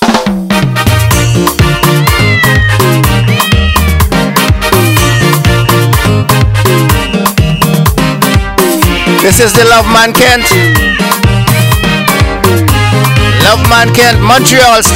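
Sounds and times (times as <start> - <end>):
music with a steady thumping beat and bass line: 0.0 - 14.9
cat meowing: 1.8 - 5.6, 10.1 - 13.6
speech: 9.3 - 11.0, 13.5 - 14.9.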